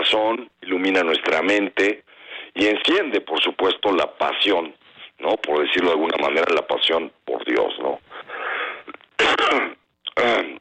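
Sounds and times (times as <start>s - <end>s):
speech: 0.1s - 8.4s
person coughing: 9.2s - 10.4s.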